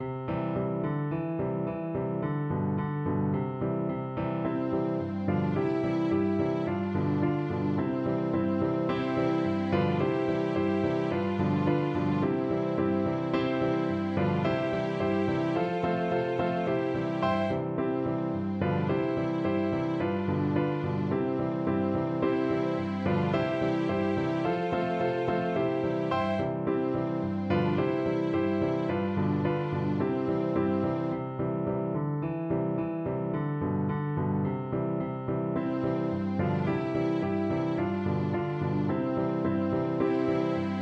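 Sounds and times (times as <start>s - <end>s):
piano: 0.0s - 40.8s
small violin: 4.1s - 31.3s, 35.5s - 40.8s.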